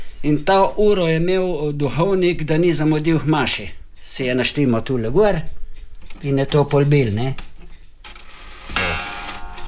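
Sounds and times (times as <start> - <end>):
speech: 0.2 - 7.5
old farmhouse clock striking: 8.0 - 9.6.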